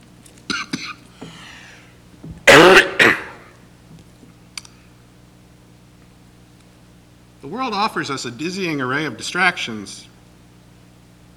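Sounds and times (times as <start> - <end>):
pastor clearing his throat: 0.5 - 1.0, 2.5 - 3.5
pastor coughing harshly: 0.5 - 1.0, 2.5 - 3.5
speech: 7.4 - 10.1.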